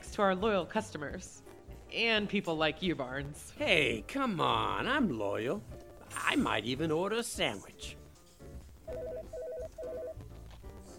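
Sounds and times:
speech: 0.2 - 8.0
old flip phone ringing: 8.9 - 10.2.

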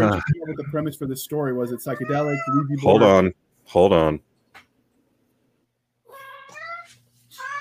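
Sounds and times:
speech: 0.0 - 4.3
low steady hum: 0.0 - 6.0
male cat meowing insistently: 1.9 - 2.7, 6.1 - 7.5.

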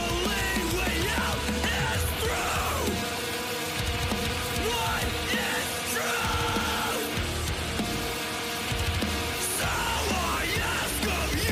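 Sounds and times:
harsh screamed male vocals: 0.0 - 3.2, 4.5 - 7.2, 9.5 - 11.4
distorted instruments: 0.0 - 11.4
pounding continuous drums: 0.0 - 11.4.

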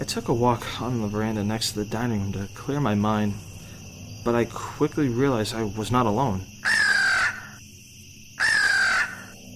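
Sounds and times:
speech: 0.1 - 3.5, 4.2 - 6.5
crow cawing: 6.6 - 7.6, 8.4 - 9.4.

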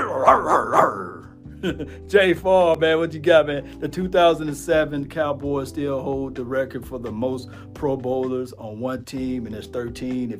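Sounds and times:
dog barking: 0.0 - 1.2
speech: 0.2 - 10.3.

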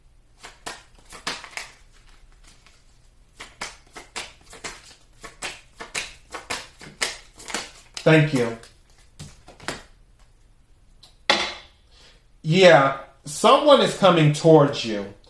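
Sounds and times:
tarot cards being drawn and handled: 0.4 - 11.1
speech: 8.0 - 8.6, 12.5 - 15.2.

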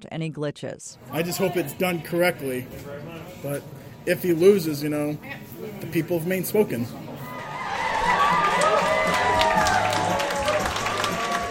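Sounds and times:
speech: 0.0 - 7.0
large indoor crowd of supporters cheering: 7.2 - 11.4
scattered clapping: 8.0 - 11.4.

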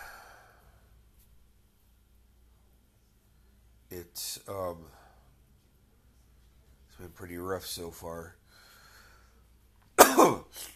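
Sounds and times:
speech: 3.9 - 5.0, 7.0 - 8.4
person with a stuffy nose ill with Covid coughing: 10.0 - 10.7.

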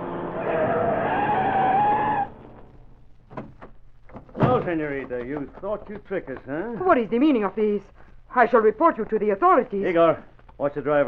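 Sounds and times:
car tires screeching as car skids to a stop: 0.0 - 3.0
car engine rumble: 0.0 - 6.7
faint scattered knocks: 3.2 - 6.7
speech: 4.7 - 11.0.

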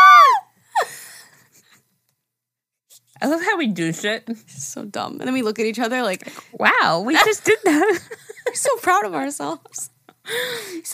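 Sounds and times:
two hosts screaming in excitement: 0.0 - 0.4
speech: 3.2 - 10.9.

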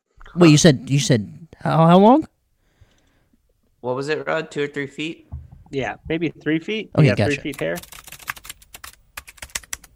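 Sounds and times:
speech: 0.4 - 2.3, 3.8 - 8.0
rapid typing on a computer keyboard: 7.5 - 9.9.

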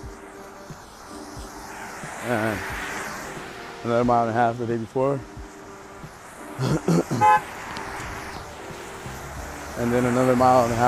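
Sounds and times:
speech: 2.2 - 2.8, 3.8 - 5.4, 6.6 - 7.6, 9.8 - 10.8
car horn honking in short beeps: 7.1 - 7.7.

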